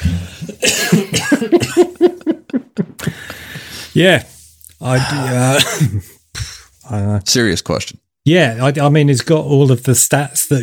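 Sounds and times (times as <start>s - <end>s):
person coughing fit: 0.0s - 2.0s, 5.0s - 6.7s
laughter: 0.0s - 3.7s
speech: 0.4s - 1.6s, 4.0s - 6.1s, 6.9s - 10.6s.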